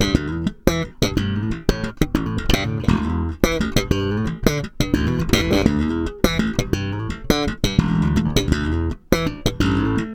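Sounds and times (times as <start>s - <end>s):
funky slap bass groove: 0.0s - 10.1s.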